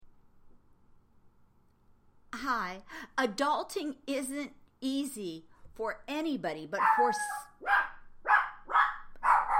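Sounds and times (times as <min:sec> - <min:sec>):
speech: 0:02.5 - 0:07.8
dog barking: 0:06.8 - 0:09.5.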